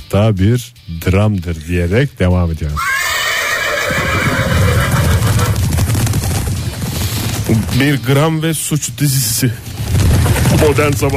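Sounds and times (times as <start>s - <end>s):
speech: 0.1s - 3.0s, 7.5s - 11.1s
horse whinnying loudly: 2.8s - 6.4s
hooves of several horses clattering: 2.8s - 11.1s.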